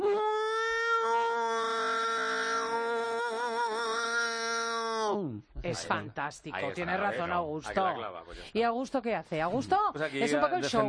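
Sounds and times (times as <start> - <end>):
person yowling imitating a cat in heat: 0.0 - 5.3
speech: 5.2 - 10.8.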